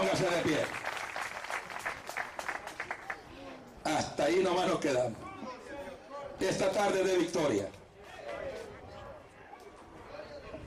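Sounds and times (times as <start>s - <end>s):
speech: 0.0s - 0.9s, 4.3s - 5.2s, 6.4s - 7.8s
audience applauding: 0.0s - 3.2s.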